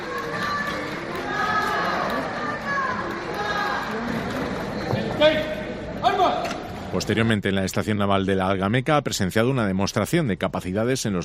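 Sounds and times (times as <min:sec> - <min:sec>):
crowd cheering and shouting at a visitor's arrival: 0:00.0 - 0:04.1
large crowd clapping at the door of Capitanía General in Cartagena: 0:00.0 - 0:05.4
speech: 0:05.2 - 0:05.4, 0:07.0 - 0:11.2.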